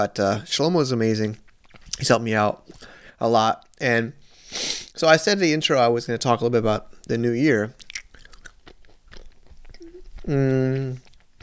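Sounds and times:
speech: 0.0s - 1.4s, 2.0s - 7.8s, 10.3s - 11.1s
wet chewing of a chocolate candy bar: 1.2s - 2.9s, 7.0s - 11.4s.

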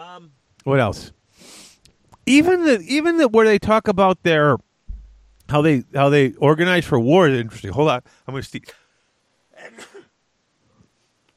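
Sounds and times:
speech: 0.0s - 1.6s, 2.3s - 4.7s, 5.5s - 8.8s
breath or sniff: 1.3s - 1.8s
sneeze: 9.6s - 10.1s.

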